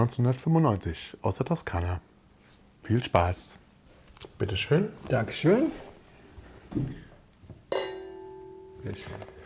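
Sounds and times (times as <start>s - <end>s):
speech: 0.0s - 2.1s, 2.8s - 3.6s, 4.2s - 5.9s, 6.7s - 7.1s, 8.8s - 9.4s
mouth-blown wine glasses with Sangiovese clinking in a toast: 7.7s - 8.9s.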